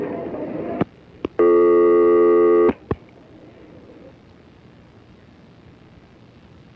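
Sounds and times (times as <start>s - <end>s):
hiss: 0.2s - 6.7s
telephone busy signal while dialing a hotline: 1.4s - 2.8s.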